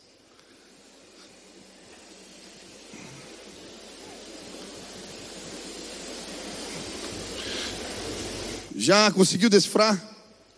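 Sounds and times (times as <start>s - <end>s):
flying beetle's wings buzzing: 0.0s - 8.7s
speech: 8.8s - 10.1s.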